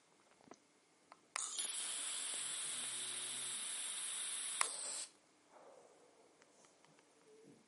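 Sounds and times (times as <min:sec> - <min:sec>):
airy hiss of someone drawing on an e-cigarette with a 0.65 ohm coil at low voltage: 0:01.4 - 0:05.2.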